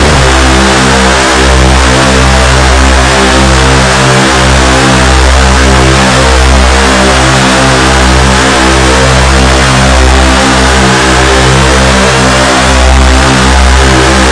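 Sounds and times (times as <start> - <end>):
synthesized chainsaw: 0.0 - 14.2.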